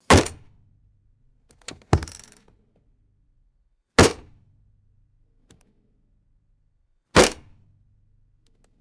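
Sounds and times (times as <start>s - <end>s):
pistol dropped on padded plastic dashboard: 1.5s - 2.5s.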